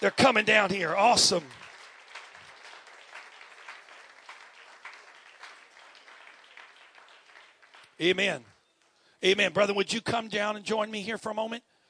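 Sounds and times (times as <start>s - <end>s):
speech: 0.0s - 1.6s, 8.0s - 8.5s, 9.2s - 11.7s
audience applauding: 0.0s - 8.6s.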